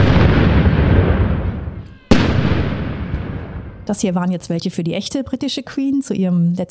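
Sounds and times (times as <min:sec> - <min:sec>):
heavy cannon firing a gun salute outdoors: 0:00.0 - 0:04.4
speech: 0:03.9 - 0:06.6.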